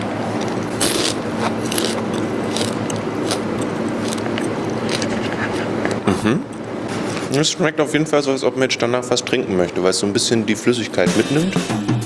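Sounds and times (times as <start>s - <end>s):
crunching while eating a large beetle: 0.2s - 5.6s
speech: 6.2s - 6.5s, 7.4s - 11.8s.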